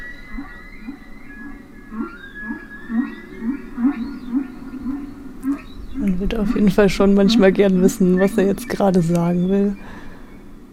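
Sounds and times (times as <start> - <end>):
low moaning whale calls: 0.0 - 8.7
steady underwater hum: 0.0 - 10.7
speech: 6.2 - 10.0.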